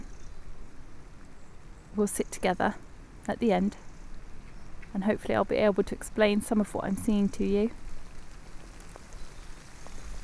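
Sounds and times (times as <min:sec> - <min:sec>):
speech: 0:02.0 - 0:03.9, 0:04.9 - 0:07.8
steady rain falling: 0:06.2 - 0:10.2.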